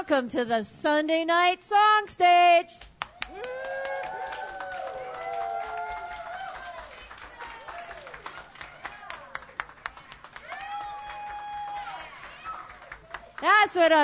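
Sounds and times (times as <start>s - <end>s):
speech: 0.0s - 3.9s, 13.4s - 14.0s
live audience clapping at a songwriters' music performance: 2.8s - 14.0s
several voices whooping and cheering: 3.1s - 9.4s, 10.4s - 12.9s.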